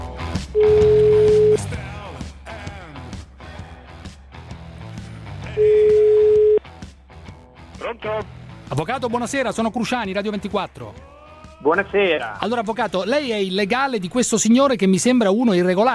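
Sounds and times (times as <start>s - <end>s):
ringback tone of an outgoing telephone call: 0.6s - 1.7s, 5.6s - 6.6s
speech: 8.7s - 15.9s.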